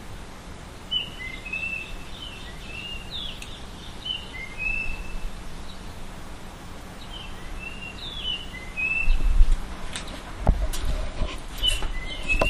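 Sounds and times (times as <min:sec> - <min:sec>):
Japanese grosbeak whistled song: 0:00.9 - 0:05.9, 0:07.0 - 0:09.4, 0:11.6 - 0:12.4
rustling: 0:09.4 - 0:12.4.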